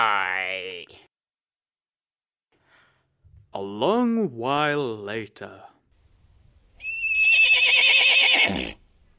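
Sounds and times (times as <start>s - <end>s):
speech: 3.6s - 5.7s
horse whinnying: 6.8s - 8.8s.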